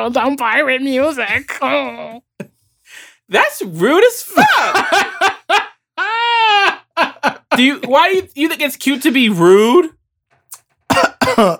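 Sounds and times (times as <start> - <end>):
speech: 0.0 - 5.6, 7.6 - 10.0, 11.0 - 11.5
laughter: 4.3 - 8.2
harsh raspy coughs: 10.9 - 11.5.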